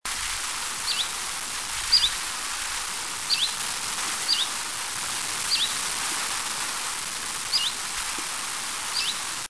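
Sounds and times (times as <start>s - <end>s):
steady hiss of background noise: 0.1s - 9.4s
Common chiffchaff calls: 0.8s - 1.2s, 1.9s - 2.2s, 3.3s - 3.6s, 4.3s - 4.6s, 5.4s - 5.8s, 7.5s - 7.8s, 8.9s - 9.3s.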